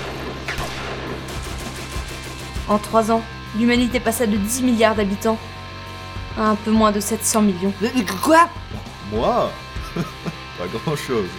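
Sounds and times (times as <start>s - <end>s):
guns fired in a dense sustained volley: 0.0s - 2.9s
speech: 2.7s - 5.5s, 6.4s - 11.3s
laughter: 9.8s - 11.3s.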